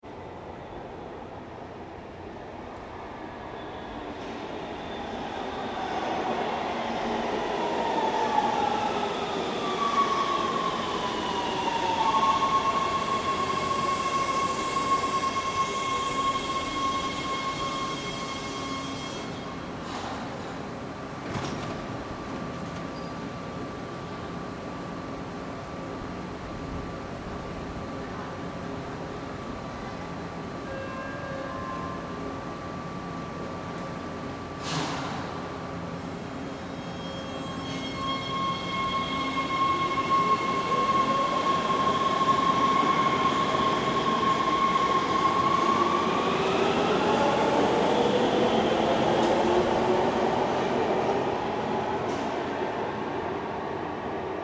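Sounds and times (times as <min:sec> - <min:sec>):
underground subway train arriving into station: 0:00.0 - 0:54.4
subway train doors opening: 0:16.2 - 0:23.3, 0:34.6 - 0:35.4.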